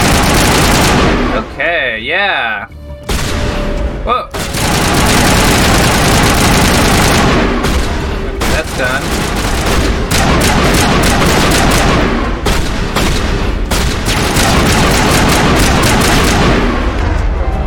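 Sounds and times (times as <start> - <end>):
shotgun firing in a video game: 0.0 - 1.4, 3.1 - 17.0
speech: 1.6 - 2.8, 4.0 - 4.5, 8.8 - 9.3.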